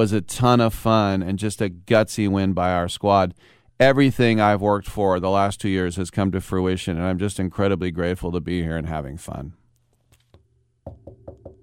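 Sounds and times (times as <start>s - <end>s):
speech: 0.0s - 9.6s
knocking on wood: 10.8s - 11.6s.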